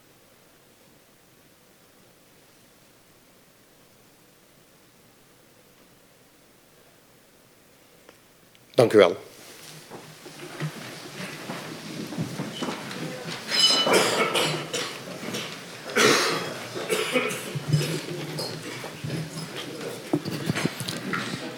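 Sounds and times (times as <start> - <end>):
low murmur of shuffling: 7.8 - 21.5
speech: 8.8 - 9.3
people coughing in a council meeting: 13.7 - 18.8.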